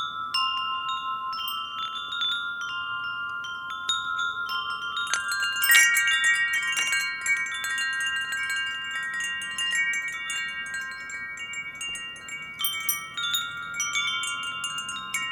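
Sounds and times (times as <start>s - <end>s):
metal wind chimes ringing: 0.0s - 15.3s.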